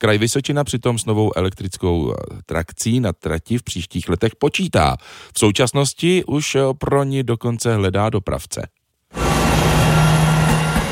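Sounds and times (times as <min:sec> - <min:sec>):
speech: 0:00.0 - 0:08.8
Regio Spider diesel railcar departing the station in Telč: 0:09.2 - 0:10.9.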